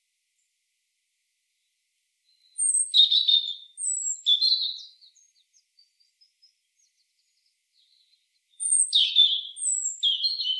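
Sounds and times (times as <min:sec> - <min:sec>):
European robin (Erithacus rubecula) song of thin high whistles and trills: 0:02.3 - 0:10.5.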